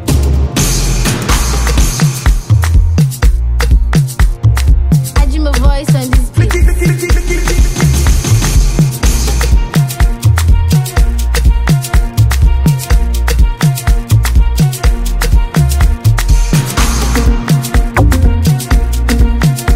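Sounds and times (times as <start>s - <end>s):
dance drums: 0.2s - 19.7s.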